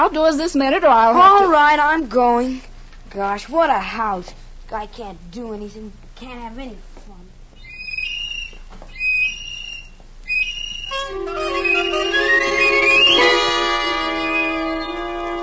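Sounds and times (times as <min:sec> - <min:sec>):
speech: 0:00.0 - 0:06.9
child blowing a little tin whistle indoors: 0:07.7 - 0:15.4.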